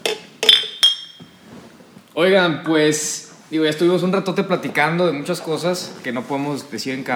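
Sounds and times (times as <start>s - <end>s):
glasses clinking in a toast among friends: 0.0s - 1.5s
speech: 2.2s - 7.1s.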